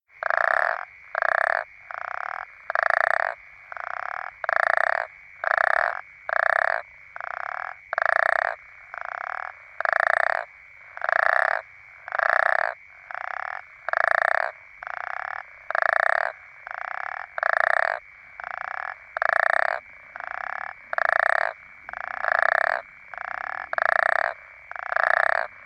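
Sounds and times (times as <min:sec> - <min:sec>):
African common toads calling: 0:00.1 - 0:25.6.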